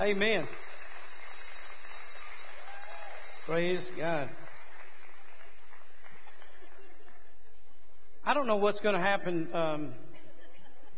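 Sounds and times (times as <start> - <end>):
speech: 0.0 - 0.7, 3.5 - 4.4, 8.2 - 10.0
applause from a church congregation: 0.0 - 7.4.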